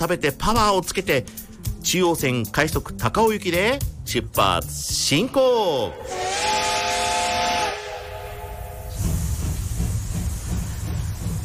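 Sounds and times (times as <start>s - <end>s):
speech: 0.0s - 6.6s
steam locomotive whistle multi-tone blast: 6.0s - 9.3s
steam locomotive steam hissing: 6.1s - 11.4s.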